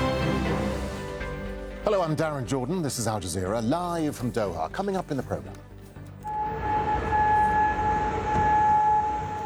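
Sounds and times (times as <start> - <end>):
air raid siren wailing in Kuwait City during an Iranian drone and missile attack: 0.0 - 2.7, 6.2 - 9.4
speech: 1.9 - 5.7.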